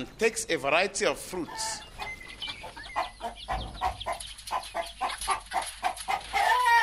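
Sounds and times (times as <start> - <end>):
speech: 0.0 - 1.9
many chickens clucking at a poultry farm by a river: 1.2 - 6.8.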